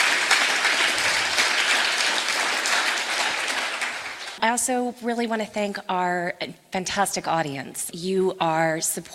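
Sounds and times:
sizeable crowd applauding: 0:00.0 - 0:04.4
speech: 0:04.4 - 0:09.1.

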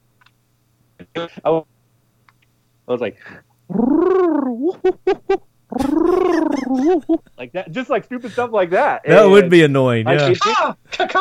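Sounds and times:
speech: 0:01.1 - 0:01.7, 0:02.9 - 0:11.1
person imitating bird calls with their voice: 0:03.7 - 0:04.9, 0:05.7 - 0:07.0
laughter: 0:04.6 - 0:07.5.

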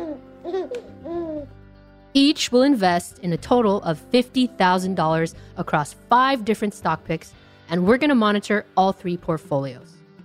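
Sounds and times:
baby babbling and cooing: 0:00.0 - 0:01.5
speech: 0:00.5 - 0:10.0.

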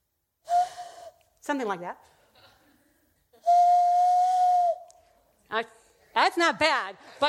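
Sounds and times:
hand whistle blown through cupped hands: 0:00.5 - 0:01.3, 0:03.4 - 0:05.1
speech: 0:01.5 - 0:02.2, 0:05.5 - 0:05.8, 0:06.4 - 0:07.2.

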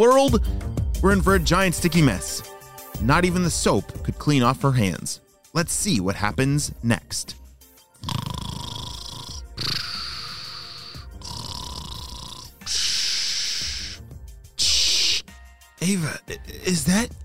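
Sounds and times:
speech: 0:00.0 - 0:07.4, 0:08.0 - 0:08.2, 0:15.8 - 0:17.2
rasping snoring over a walkie-talkie: 0:08.0 - 0:14.0.

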